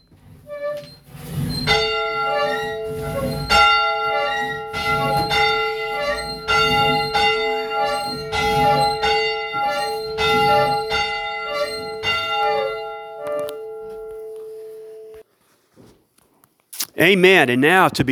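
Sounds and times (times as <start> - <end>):
church bell ringing on a Sunday morning: 1.7 - 15.2
speech: 17.0 - 18.1.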